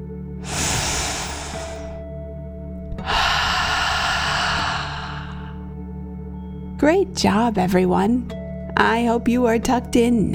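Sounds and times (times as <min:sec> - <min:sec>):
deep breath in and out in a relaxation exercise: 0:00.4 - 0:02.0, 0:02.9 - 0:05.8
speech: 0:06.8 - 0:10.3.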